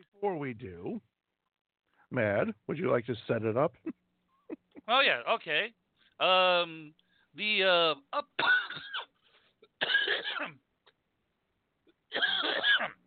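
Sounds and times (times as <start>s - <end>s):
speech: 0.2s - 1.1s, 2.1s - 4.0s, 4.9s - 9.1s, 9.8s - 10.6s, 12.1s - 13.0s
person coughing: 8.4s - 10.6s, 12.1s - 13.0s.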